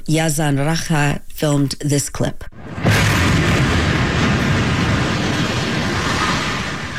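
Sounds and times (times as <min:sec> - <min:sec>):
speech: 0:00.1 - 0:02.8
heavy explosion as a high-rise residential building is struck: 0:02.6 - 0:06.9.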